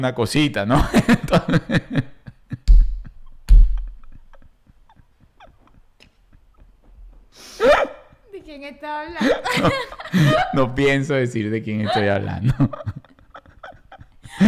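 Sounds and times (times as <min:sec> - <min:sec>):
speech: 0:00.0 - 0:02.1, 0:08.5 - 0:13.0
laughter: 0:00.7 - 0:07.1, 0:09.2 - 0:10.8, 0:11.7 - 0:14.4
voice imitating a runny nose being cleared with sniffs and snorts: 0:07.4 - 0:07.9.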